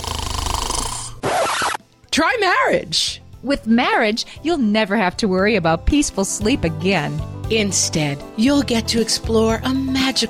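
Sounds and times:
loud snoring with a rattling buzz: 0.0s - 1.3s
speech: 2.2s - 10.2s.

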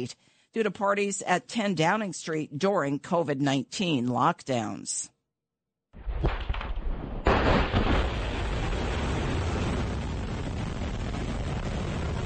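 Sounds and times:
speech: 0.0s - 5.1s
explosions from Russian airstrikes on Kyiv: 6.0s - 12.2s.

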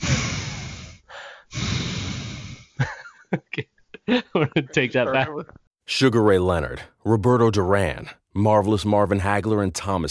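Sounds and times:
heavy breathing into the microphone: 0.0s - 2.9s
laughter: 2.8s - 5.6s
speech: 3.3s - 10.0s.

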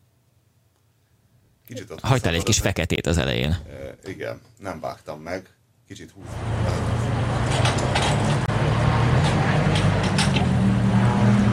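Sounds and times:
speech: 1.7s - 7.8s
race cars roaring on a race track: 6.2s - 11.5s.

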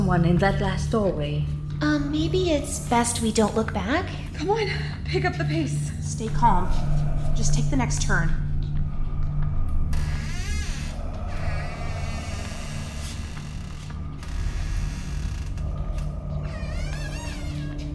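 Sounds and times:
steady low rumble: 0.0s - 17.9s
speech: 0.1s - 8.4s
door creaking slowly open: 9.9s - 17.9s.

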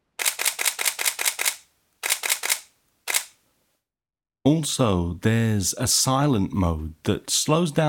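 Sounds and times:
camera shutter mechanism firing: 0.2s - 3.4s
speech: 4.4s - 7.8s.

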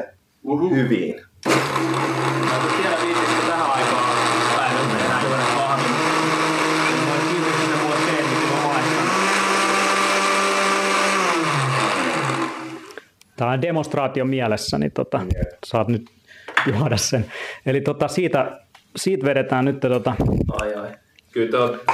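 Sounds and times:
speech: 0.5s - 3.2s, 13.4s - 21.9s
blender whirring: 1.4s - 13.0s.

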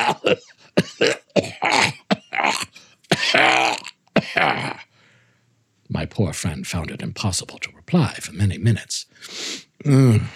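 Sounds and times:
person acting out a man's prolonged fit of coughing: 0.0s - 4.9s
speech: 6.2s - 9.1s, 9.8s - 10.3s.

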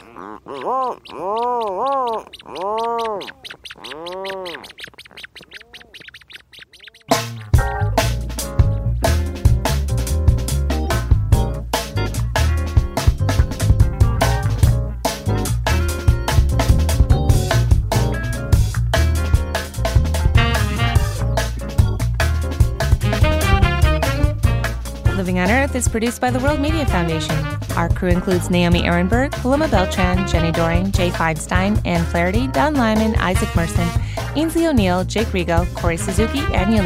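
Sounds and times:
bird giving warbling calls: 0.0s - 7.8s
speech: 0.2s - 4.9s, 25.9s - 36.8s
loud rhythmic music: 7.1s - 36.8s.

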